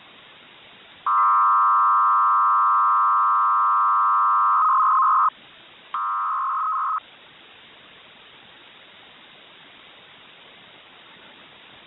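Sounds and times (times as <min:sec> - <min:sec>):
Harris Autolink-I first generation ALE system radio signal: 0:01.1 - 0:05.3, 0:06.0 - 0:07.0.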